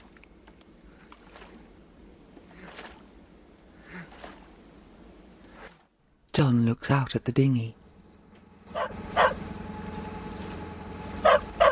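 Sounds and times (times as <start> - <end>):
low hum: 0.0 - 11.7
speech: 6.4 - 7.8
dog barking on a yacht cabin roof: 8.7 - 9.4, 11.2 - 11.7.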